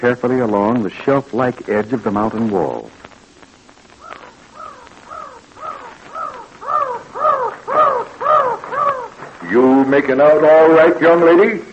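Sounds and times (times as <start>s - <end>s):
speech: 0.0s - 3.1s, 9.5s - 11.7s
mountain crows cawing along the edge of a mountain wall: 3.9s - 9.4s.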